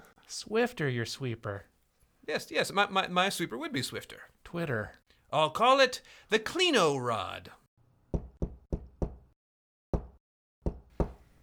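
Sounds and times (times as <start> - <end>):
speech: 0.3 - 1.7, 2.3 - 7.6
knocking on a door: 8.1 - 9.2, 9.9 - 11.2.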